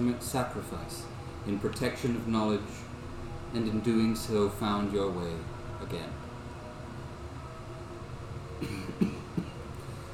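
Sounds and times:
speech: 0.0 - 2.9, 3.5 - 6.2, 8.6 - 9.1
woman coughing softly: 8.6 - 9.6.

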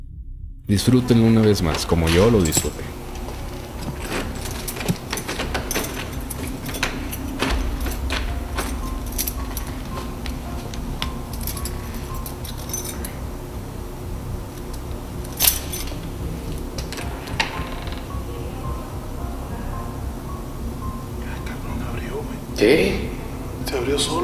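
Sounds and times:
steady low rumble: 0.0 - 24.2
speech: 0.7 - 3.0
door hinges squeaking as door swings open: 1.2 - 13.3, 15.4 - 18.4.

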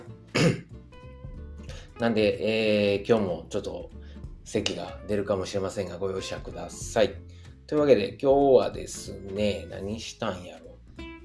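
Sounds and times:
person coughing forcefully: 0.3 - 0.7
speech: 2.0 - 10.6.

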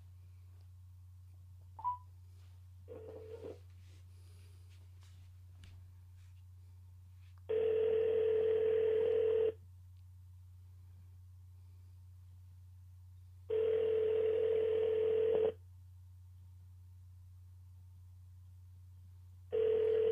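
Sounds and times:
low constant hum: 0.0 - 20.1
outgoing phone call ringback tone: 1.8 - 2.0, 2.9 - 3.6, 7.5 - 9.6, 13.5 - 15.6, 19.5 - 20.1.

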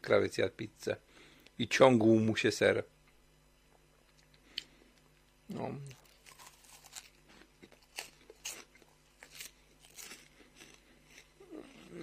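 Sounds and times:
speech: 0.0 - 3.0, 5.5 - 6.0
steady low hum: 0.0 - 12.0
crunching of a crispy snack: 5.8 - 12.0.

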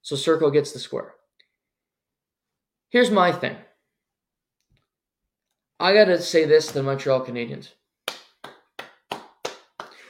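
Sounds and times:
speech: 0.0 - 1.2, 2.9 - 3.7, 5.8 - 7.8
single person clapping hands: 8.0 - 10.0.

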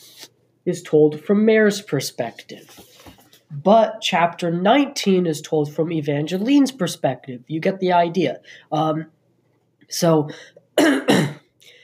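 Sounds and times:
speech: 0.6 - 2.9, 3.5 - 9.2, 9.9 - 11.4
throat clearing: 10.8 - 11.4
person with seasonal allergies coughing: 10.8 - 11.5.

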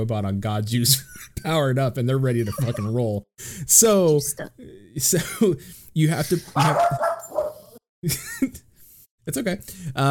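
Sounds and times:
speech: 0.0 - 7.2, 8.0 - 8.7, 9.3 - 10.0
laughter: 2.4 - 3.1, 6.1 - 7.3
dog barking: 6.6 - 7.8.

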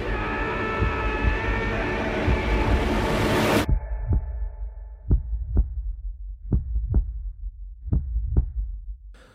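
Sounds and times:
dense swelling roar of sci-fi trailer closing effects: 0.0 - 3.7
low hum: 0.0 - 8.6
slow paired heartbeat-like thuds: 0.7 - 9.2.

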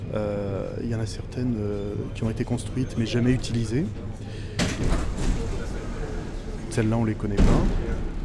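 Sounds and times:
speech: 0.1 - 5.2, 6.8 - 8.1
metro train door sliding shut with a loud thud: 4.6 - 6.1.

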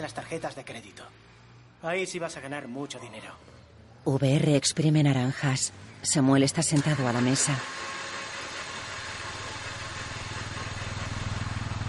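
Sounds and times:
speech: 0.0 - 8.0
motorcycle engine running as the bike rides along: 7.0 - 11.8.

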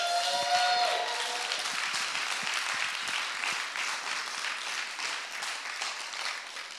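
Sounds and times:
tonal cheer or whoop: 0.0 - 1.7
crowd applauding with many hands clapping: 0.0 - 6.7.

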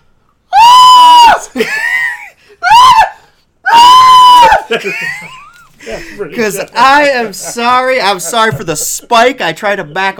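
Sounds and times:
man screaming as a spider is placed on his face: 0.5 - 1.6, 2.6 - 4.8
speech: 1.5 - 1.8, 4.7 - 10.1
laughter: 4.3 - 9.3.

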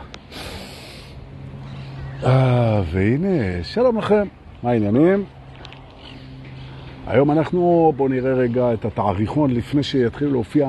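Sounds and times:
deep breathy inhalation close to the microphone: 0.0 - 2.0
short sharp sniff: 0.3 - 1.2
speech: 2.2 - 5.4, 7.1 - 10.6.

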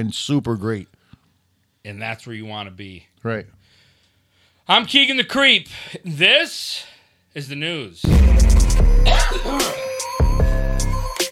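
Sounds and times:
speech: 0.0 - 1.0, 1.8 - 3.6, 4.7 - 9.8
person clearing throat: 8.9 - 9.9
person coughing harshly: 8.9 - 9.9.

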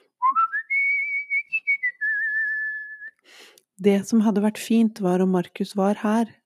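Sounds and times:
person whistling a short melody: 0.2 - 3.2
speech: 3.8 - 6.4.

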